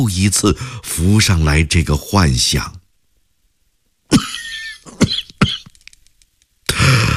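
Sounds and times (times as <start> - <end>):
speech: 0.0 - 2.8
person coughing after choking on cigarette smoke: 4.1 - 5.8.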